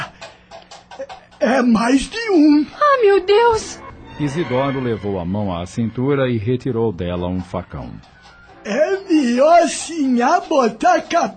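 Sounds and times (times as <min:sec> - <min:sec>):
several horses galloping: 0:00.0 - 0:03.7, 0:07.0 - 0:11.3
speech: 0:01.0 - 0:11.3.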